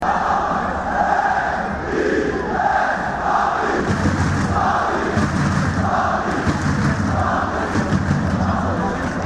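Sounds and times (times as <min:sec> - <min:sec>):
people chanting in Paris: 0:00.0 - 0:09.2.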